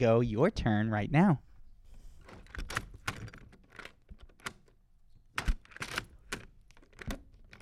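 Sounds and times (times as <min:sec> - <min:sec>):
speech: 0:00.0 - 0:01.5
door handle and lock being operated: 0:02.3 - 0:07.6.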